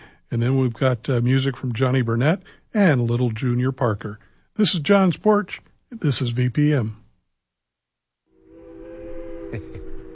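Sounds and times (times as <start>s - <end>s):
speech: 0.3s - 7.0s, 9.5s - 9.8s
train whistle blowing: 8.3s - 10.1s.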